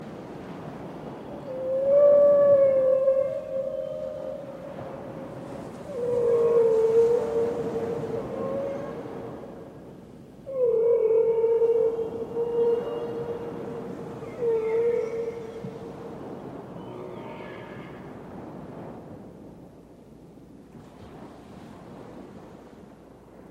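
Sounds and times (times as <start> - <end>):
whale call: 1.3 - 9.7, 10.5 - 18.2.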